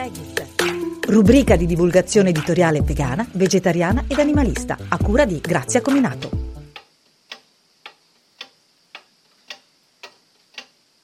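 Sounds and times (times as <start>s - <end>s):
steady ticking: 0.4s - 10.8s
speech: 1.1s - 6.4s.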